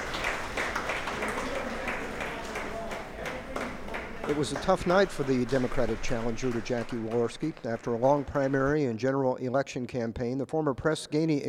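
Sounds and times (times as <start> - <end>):
muffled crowd applause from another room: 0.0 - 8.8
speech: 4.3 - 11.4.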